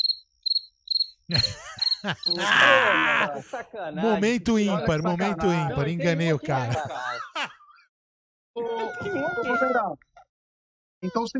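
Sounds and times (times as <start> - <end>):
cricket chirping: 0.0 - 2.8
speech: 1.3 - 7.5, 8.6 - 10.1, 11.0 - 11.3
laughter: 1.3 - 7.8.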